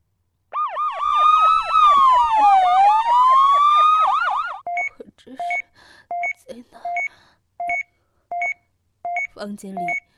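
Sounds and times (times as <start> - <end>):
police siren wailing: 0.6 - 4.6
speech: 9.4 - 10.1.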